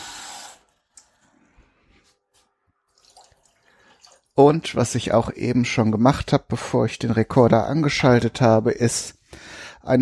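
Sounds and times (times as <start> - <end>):
water poured into a cooking pot on the stove: 2.9 - 4.4
speech: 4.4 - 9.9.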